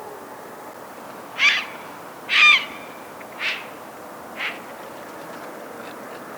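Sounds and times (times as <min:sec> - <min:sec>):
grey heron calling: 0:01.3 - 0:05.1.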